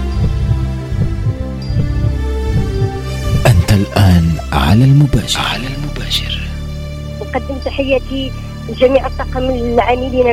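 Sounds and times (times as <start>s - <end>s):
heartbeat sound effect of deep low thuds: 0.0s - 4.5s
speech: 3.8s - 6.3s, 7.3s - 10.3s.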